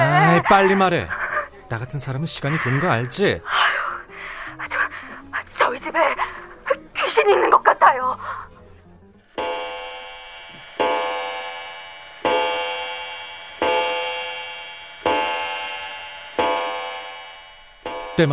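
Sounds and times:
speech: 0:00.4 - 0:03.8, 0:05.7 - 0:06.4, 0:07.1 - 0:08.5
old pendulum wall clock striking the hour: 0:09.2 - 0:18.3.

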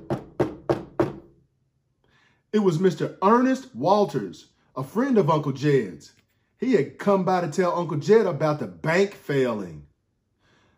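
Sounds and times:
firm knocks on the door of a house: 0:00.0 - 0:01.3
speech: 0:02.5 - 0:09.9.

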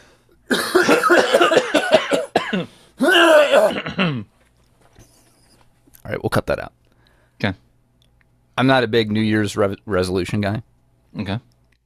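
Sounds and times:
person clearing throat: 0:00.5 - 0:04.3
speech: 0:02.5 - 0:04.3, 0:06.0 - 0:06.8, 0:07.4 - 0:07.6, 0:08.6 - 0:11.5.

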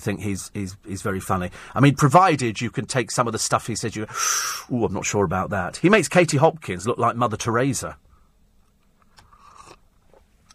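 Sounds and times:
speech: 0:00.0 - 0:08.0
slurping hot coffee: 0:09.2 - 0:10.2.

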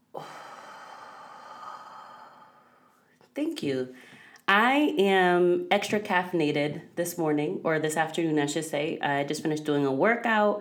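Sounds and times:
deep breath in and out: 0:00.1 - 0:03.2, 0:03.9 - 0:04.4
speech: 0:03.4 - 0:10.5.

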